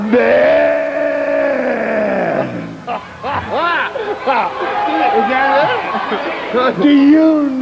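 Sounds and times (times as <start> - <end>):
man imitating cattle bellowing when branded with a hot iron: 0.0 - 4.0
man making wavering grunts and cries: 0.0 - 4.2
laughter: 0.0 - 7.5
speech: 0.1 - 0.6, 4.3 - 7.6.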